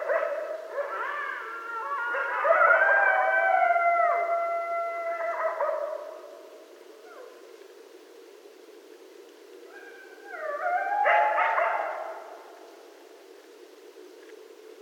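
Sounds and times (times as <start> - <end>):
coyotes howling at night: 0.0 - 6.4, 9.7 - 12.5.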